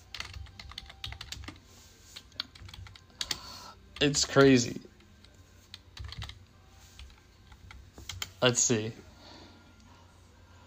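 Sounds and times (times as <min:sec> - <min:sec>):
typing on a computer keyboard: 0:00.0 - 0:01.6, 0:02.2 - 0:03.4, 0:05.1 - 0:06.4, 0:07.0 - 0:08.4
speech: 0:04.0 - 0:04.9, 0:08.4 - 0:09.0.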